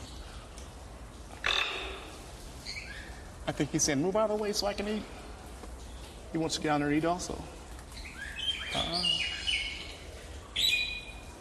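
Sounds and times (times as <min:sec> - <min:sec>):
bird chirps and trills: 0:01.4 - 0:03.3, 0:07.9 - 0:11.3
speech: 0:03.5 - 0:05.2, 0:06.3 - 0:07.6.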